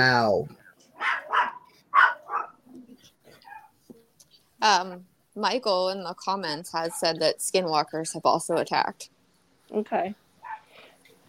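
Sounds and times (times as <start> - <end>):
speech: 0.0 - 0.6, 4.6 - 9.1, 9.7 - 10.2
dog barking: 1.0 - 2.6, 3.4 - 3.7, 10.4 - 10.7.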